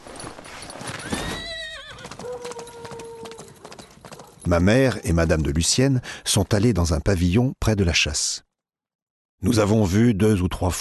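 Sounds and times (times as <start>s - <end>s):
horse hooves clip-clopping: 0.0s - 5.8s
horse neighing: 1.0s - 3.6s
speech: 4.5s - 8.5s, 9.4s - 10.8s.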